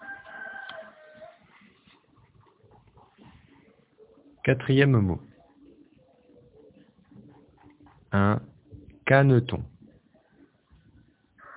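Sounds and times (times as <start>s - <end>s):
rooster crowing: 0.0s - 1.6s, 11.3s - 11.5s
farmyard clucking: 0.0s - 11.5s
speech: 4.4s - 5.3s, 9.1s - 9.7s.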